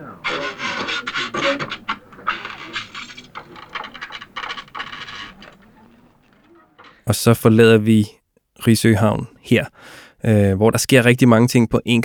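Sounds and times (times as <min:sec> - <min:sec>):
saw cutting through a wooden chair: 0:00.0 - 0:07.1
speech: 0:07.1 - 0:12.0.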